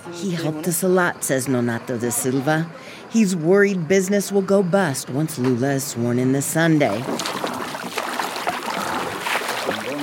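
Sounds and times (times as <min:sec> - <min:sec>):
speech: 0:00.0 - 0:07.4
water rushing against a boat hull on a river: 0:06.9 - 0:10.0.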